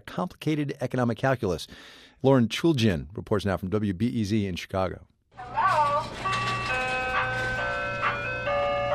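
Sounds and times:
speech: 0:00.2 - 0:05.6
music-box jingle from an antique ice cream truck in downtown Chicago: 0:05.4 - 0:08.9.

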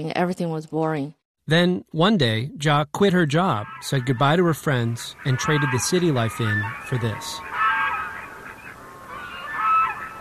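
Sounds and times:
speech: 0:00.0 - 0:07.5
geese honking at a mountain lake: 0:03.1 - 0:10.1.

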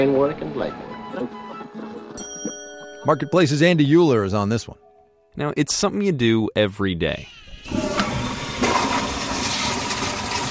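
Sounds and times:
speech: 0:00.0 - 0:02.3, 0:03.0 - 0:04.8, 0:05.4 - 0:07.4
toilet flushing: 0:07.6 - 0:10.4.

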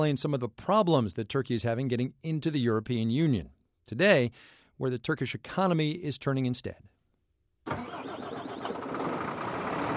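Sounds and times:
speech: 0:00.0 - 0:06.9
heavy truck engine rumbling at a truck depot in northwest Turkey: 0:07.7 - 0:09.9
trucks running at a truck depot in northwest Turkey: 0:07.7 - 0:09.9.

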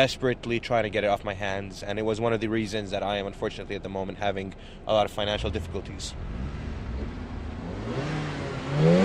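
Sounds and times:
speech: 0:00.0 - 0:06.6
fast car engine idling and revving in a car park: 0:05.2 - 0:09.0.

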